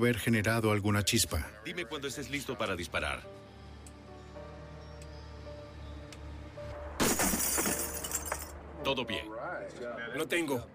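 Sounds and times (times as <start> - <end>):
speech: 0.0 - 3.5, 8.9 - 10.7
window glass smashing: 7.0 - 8.5
window glass shards falling and tinkling: 7.0 - 8.6.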